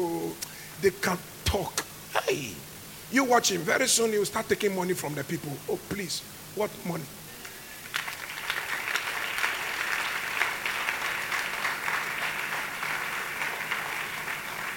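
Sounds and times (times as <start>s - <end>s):
speech: 0.8s - 7.2s
audience clapping: 7.4s - 14.7s.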